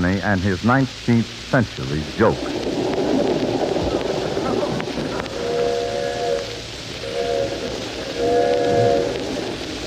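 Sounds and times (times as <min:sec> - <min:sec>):
speech: 0:00.0 - 0:02.8
passenger train rumbling with a steady hissing roar: 0:00.0 - 0:09.8
passenger train steam whistle blasts: 0:05.2 - 0:09.6.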